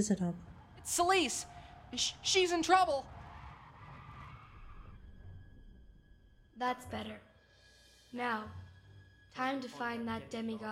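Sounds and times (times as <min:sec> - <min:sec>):
speech: 0:00.0 - 0:03.2, 0:06.6 - 0:07.3, 0:08.1 - 0:08.6, 0:09.3 - 0:10.7
car tires screeching as the car turns around: 0:00.5 - 0:05.8.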